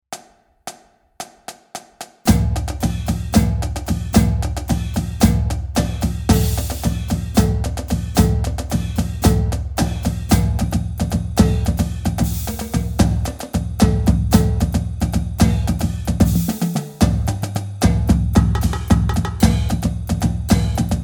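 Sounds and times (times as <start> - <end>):
drumline exercise with accent taps: 0.1 - 21.0.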